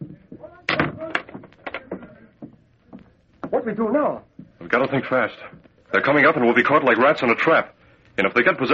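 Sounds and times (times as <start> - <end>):
door banging shut: 0.7 - 2.1
speech: 3.6 - 8.7.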